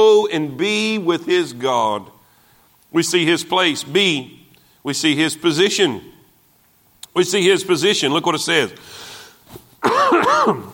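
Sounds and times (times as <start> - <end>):
speech: 0.0 - 2.2, 2.9 - 6.2, 7.1 - 10.7
harsh voiced throat clearing: 9.8 - 10.7
loud cough: 9.8 - 10.7.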